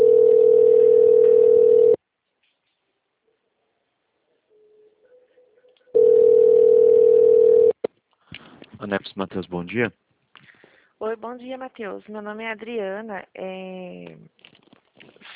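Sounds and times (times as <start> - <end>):
telephone ringback tone on an outgoing call: 0.0 - 2.0, 5.9 - 7.8
speech: 8.8 - 10.1, 11.1 - 14.5.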